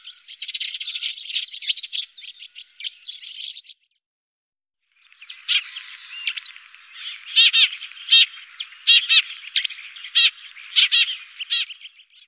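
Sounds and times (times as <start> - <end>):
Eurasian tree sparrow chirping with harsh chirps and softer twittering: 0.0 - 3.8, 5.0 - 12.2.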